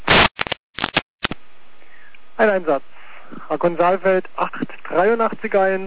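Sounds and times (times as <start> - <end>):
bursts of static clicks: 0.1 - 1.4
speech: 2.4 - 2.9, 3.5 - 5.8.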